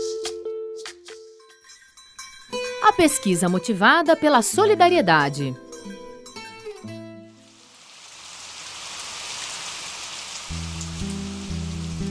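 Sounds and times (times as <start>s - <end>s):
music: 0.0s - 7.8s, 10.5s - 12.1s
speech: 2.9s - 6.0s
steady rain: 7.4s - 12.1s.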